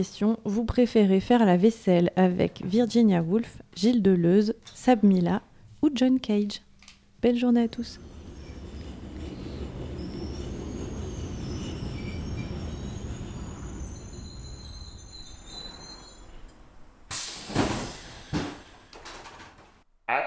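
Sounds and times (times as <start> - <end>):
speech: 0.0 - 8.1
train pulling into a station with rolling wheels rumbling: 7.3 - 19.8
train wheels squealing on rail: 7.6 - 18.8
loud sharp knocks: 17.5 - 19.7.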